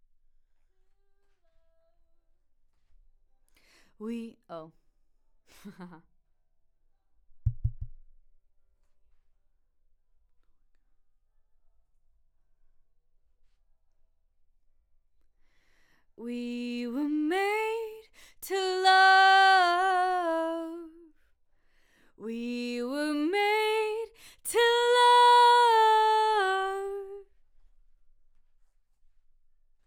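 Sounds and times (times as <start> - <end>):
voice: 4.0 - 4.7, 16.2 - 21.0, 22.2 - 27.2.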